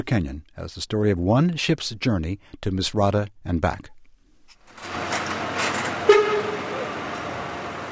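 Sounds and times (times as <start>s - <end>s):
speech: 0.0s - 4.0s
semi truck engine rumbling on a car ferry ramp: 4.6s - 7.9s
short semi truck horn toot: 6.0s - 6.9s.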